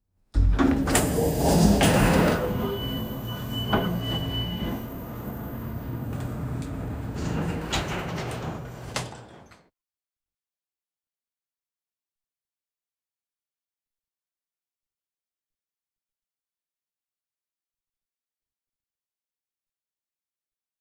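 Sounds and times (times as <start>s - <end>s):
elevator door opening: 0.4s - 9.7s.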